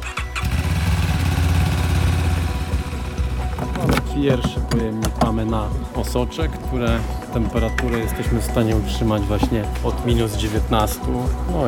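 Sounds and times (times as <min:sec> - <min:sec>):
motorcycle ambulance engine cranking and idling in Łódź Poland: 0:00.0 - 0:04.8
speech: 0:04.2 - 0:11.6.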